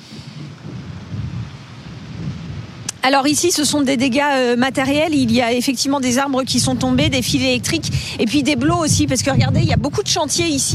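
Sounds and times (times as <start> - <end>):
strong storm wind gusts at Cherbourg in the Manche France: 0.0 - 10.7
speech: 3.0 - 10.7.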